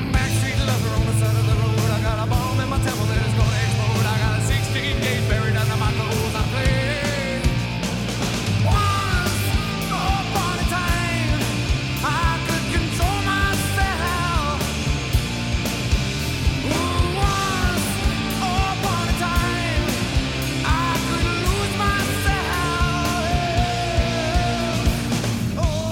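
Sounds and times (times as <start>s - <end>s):
distorted electric guitar: 0.0s - 25.8s
driving drums: 0.0s - 25.8s
loud dense rock track: 0.0s - 25.8s.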